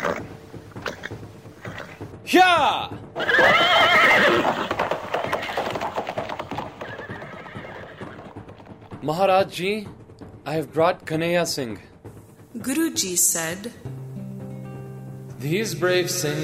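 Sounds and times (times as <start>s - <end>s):
horse whinnying: 0.0s - 2.1s, 3.1s - 8.8s
horse hooves clattering: 0.0s - 14.0s
speech: 2.3s - 4.6s, 9.1s - 11.9s, 12.6s - 13.9s, 15.4s - 16.4s.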